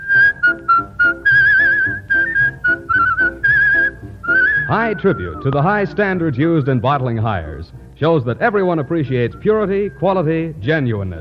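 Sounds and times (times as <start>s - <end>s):
person whistling a bright clear tune: 0.0s - 5.6s
soft musical accompaniment: 0.0s - 11.1s
speech: 4.7s - 11.1s.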